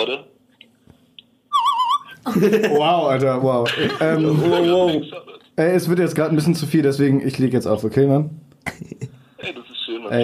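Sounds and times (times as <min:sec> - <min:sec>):
speech: 0:00.0 - 0:00.3, 0:02.2 - 0:10.2
short warbling whistle: 0:01.5 - 0:02.2
laughter: 0:02.2 - 0:05.6.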